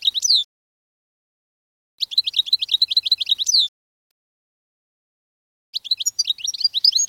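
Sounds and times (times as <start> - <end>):
canary song of quick repeated high chirps and trills: 0.0 - 0.5, 2.0 - 3.7, 5.8 - 7.0.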